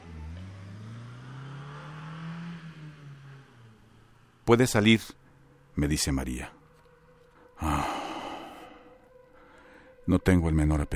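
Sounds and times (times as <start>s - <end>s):
car engine starting, revving and accelerating as the vehicle pulls away: 0.0s - 5.7s
speech: 4.5s - 5.2s, 5.8s - 6.6s, 7.6s - 8.0s, 10.1s - 10.9s.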